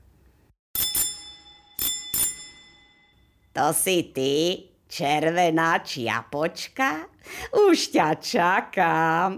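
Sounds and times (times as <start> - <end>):
bright bell at a door ringing: 0.8 - 3.6
speech: 3.6 - 9.3.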